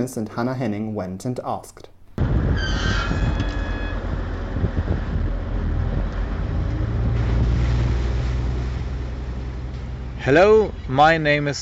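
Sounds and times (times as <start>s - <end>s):
speech: 0.0s - 1.9s, 2.6s - 3.4s, 10.2s - 11.6s
ferry boat engine rumbling at the Wellingdorf pier in Kiel on the Baltic Sea: 2.2s - 11.6s
wind at a Baltic Sea pier: 2.2s - 11.6s
brief high whistling squeal: 2.6s - 4.0s
Baltic Sea water lapping at a pier: 6.4s - 10.9s.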